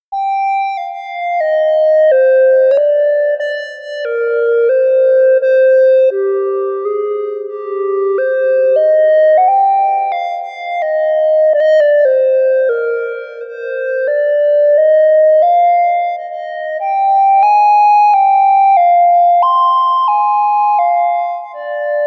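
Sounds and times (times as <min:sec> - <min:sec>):
melody: 0:00.2 - 0:22.0.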